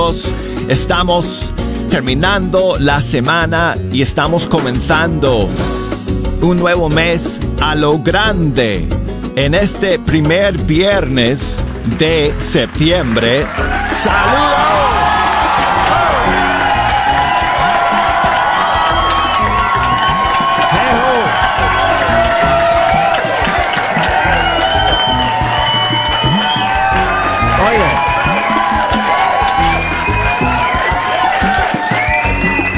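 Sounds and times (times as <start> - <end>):
speech: 0.1 - 5.8, 6.4 - 15.0
crowd cheering with shouts and whoops: 11.8 - 32.7
man yelling excitedly: 13.7 - 16.3, 20.6 - 21.5.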